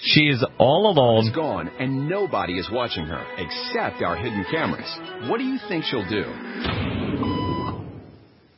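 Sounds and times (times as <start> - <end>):
broad noise: 0.0 - 8.5
speech: 0.2 - 6.9
steady electronic beep: 7.2 - 7.8.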